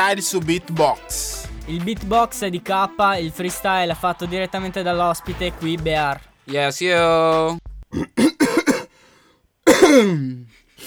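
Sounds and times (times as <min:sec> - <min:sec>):
speech: 0:00.1 - 0:08.4, 0:09.9 - 0:10.8
gravelly throat clearing: 0:07.9 - 0:08.9, 0:09.7 - 0:10.5
harsh coughing: 0:07.9 - 0:09.0, 0:09.6 - 0:10.8.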